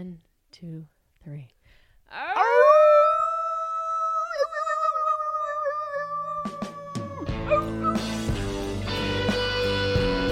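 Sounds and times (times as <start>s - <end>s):
speech: 0.0s - 2.6s
group of people howling in a wolf-like imitation: 2.2s - 8.3s
burst of music: 6.4s - 10.2s.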